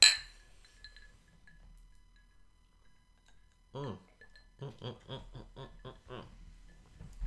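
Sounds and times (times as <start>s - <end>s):
glasses clinking in a toast: 0.0s - 3.5s
laughter: 4.6s - 6.4s.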